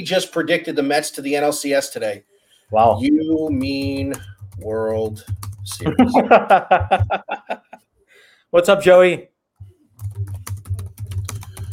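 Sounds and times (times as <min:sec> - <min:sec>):
speech: 0:00.0 - 0:07.5, 0:08.5 - 0:09.3
computer keyboard typing: 0:03.0 - 0:07.3, 0:09.6 - 0:11.7
laughter: 0:05.8 - 0:07.8.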